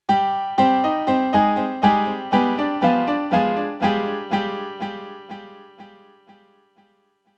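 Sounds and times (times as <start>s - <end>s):
piano through hardware delay: 0.0s - 7.0s.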